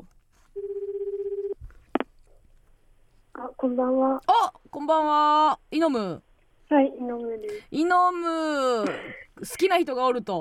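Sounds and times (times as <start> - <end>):
pulsing electronic ringback tone on a phone line: 0.6 - 1.6
speech: 3.6 - 10.3.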